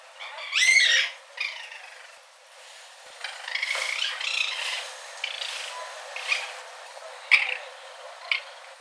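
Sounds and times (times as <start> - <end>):
Procyon lotor: 0.2 - 2.3, 3.2 - 6.6, 7.3 - 8.7.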